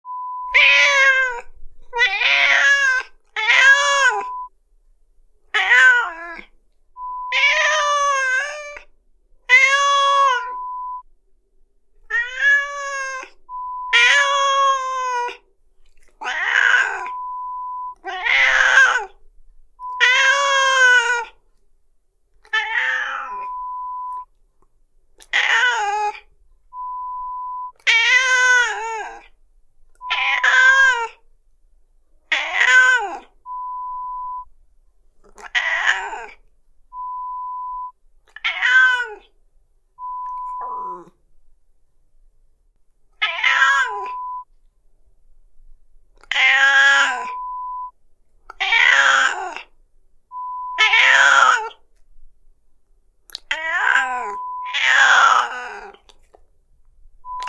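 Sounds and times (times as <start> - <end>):
cat sound effect: 0.4 - 4.5, 5.5 - 11.0, 12.0 - 19.2, 19.8 - 21.4, 22.4 - 24.4, 25.2 - 31.2, 32.3 - 34.5, 35.2 - 39.4, 40.0 - 41.2, 43.2 - 44.5, 46.2 - 51.8, 53.3 - 56.4, 57.2 - 57.4.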